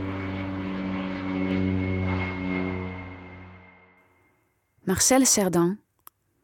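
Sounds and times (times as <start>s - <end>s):
Lockheed L749 propeller airliner droning overhead: 0.0s - 4.8s
speech: 4.9s - 5.8s.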